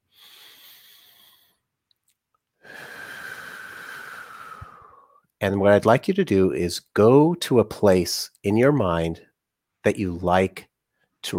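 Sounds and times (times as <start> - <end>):
slow deep breath during a relaxation exercise: 0.0 - 1.7, 2.6 - 5.3
speech: 5.4 - 11.3.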